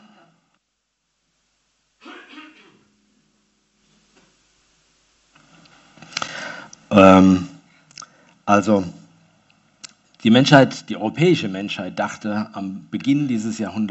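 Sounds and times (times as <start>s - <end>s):
person coughing harshly: 2.0s - 2.8s
speech: 7.0s - 7.5s, 8.5s - 9.0s, 10.2s - 13.8s.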